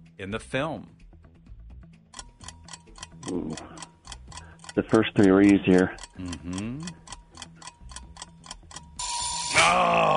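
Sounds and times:
quiz countdown timer ticking: 0.0s - 10.1s
speech: 0.2s - 1.0s, 3.3s - 3.8s, 4.8s - 7.0s, 9.6s - 10.1s
loud bright buzzer blaring: 9.0s - 9.7s.

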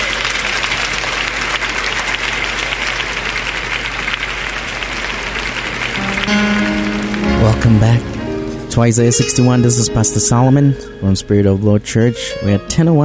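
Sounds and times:
audience clapping: 0.0s - 9.2s
speech: 7.6s - 8.1s, 8.8s - 13.0s.

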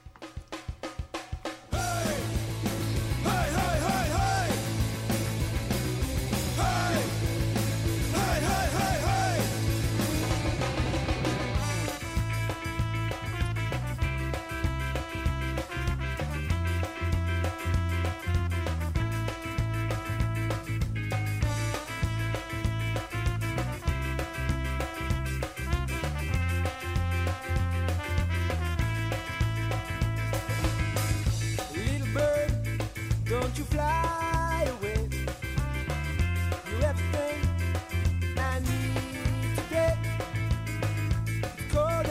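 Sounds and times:
band demo recording of a song: 0.0s - 42.0s
steady punchy drum beat: 0.0s - 42.0s
sung vocals: 1.7s - 4.8s, 6.5s - 9.8s, 31.7s - 35.2s, 36.6s - 37.5s, 38.4s - 40.3s, 41.6s - 42.0s
guitars and bass: 1.7s - 42.0s.

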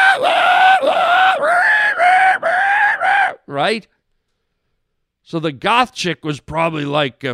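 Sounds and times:
person imitating a pig squealing and screaming: 0.0s - 3.6s
speech: 3.6s - 4.0s, 5.3s - 7.3s.

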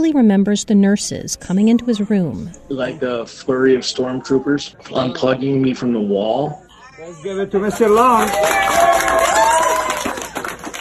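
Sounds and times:
speech: 0.0s - 9.2s
excited voices: 1.5s - 10.6s
hospital staff cheering and clapping in an indoor hallway: 7.6s - 10.8s.

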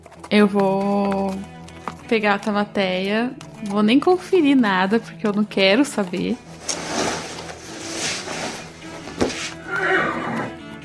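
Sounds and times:
speech: 0.3s - 1.5s, 2.1s - 6.8s
horse whinnying and snorting: 9.3s - 10.6s.

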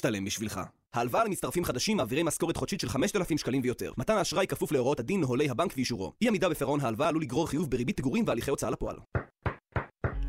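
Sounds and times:
speech: 0.0s - 9.2s
firm knocking on a door: 9.1s - 10.2s.

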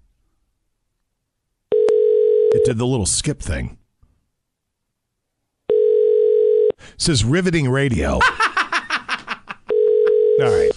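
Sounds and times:
telephone ring tone on a call made by dialing zero: 1.7s - 2.7s, 5.7s - 6.8s, 9.7s - 10.7s
speech: 2.6s - 3.8s, 7.0s - 8.4s, 10.4s - 10.7s
laughter: 8.2s - 9.8s.

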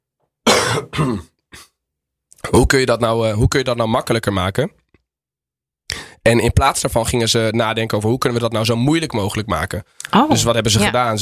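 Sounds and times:
person coughing: 0.5s - 1.8s
speech: 0.8s - 1.6s, 2.5s - 4.8s, 6.3s - 11.1s.

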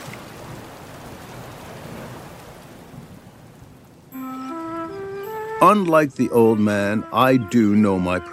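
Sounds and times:
steady dense rain hissing in a storm: 0.0s - 8.1s
short rising sequence of clear musical tones: 4.1s - 8.3s
speech: 5.6s - 8.3s.

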